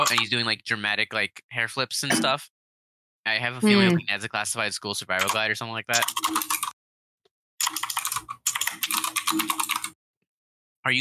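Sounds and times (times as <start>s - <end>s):
computer keyboard typing: 0.0s - 0.3s, 5.2s - 6.8s, 7.6s - 10.0s
speech: 0.1s - 2.6s, 3.2s - 6.7s, 9.3s - 9.8s.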